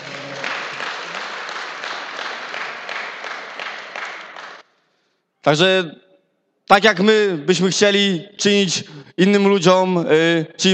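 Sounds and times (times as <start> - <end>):
audience applauding in a room: 0.0 - 4.7
speech: 5.5 - 6.1, 6.7 - 10.7.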